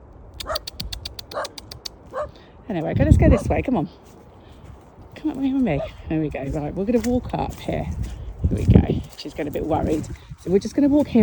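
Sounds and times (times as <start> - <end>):
low outdoor rumble: 0.0 - 11.2
small dog yapping: 0.4 - 2.3
speech: 2.7 - 4.2, 5.2 - 11.2.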